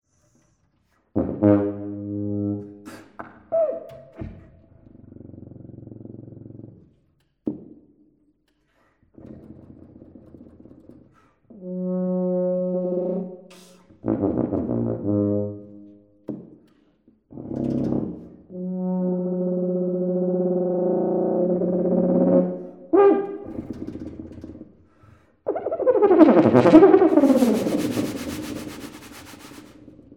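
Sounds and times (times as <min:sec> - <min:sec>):
solo tuba music: 0:01.2 - 0:04.2, 0:11.5 - 0:16.0, 0:17.4 - 0:23.9, 0:25.5 - 0:29.7.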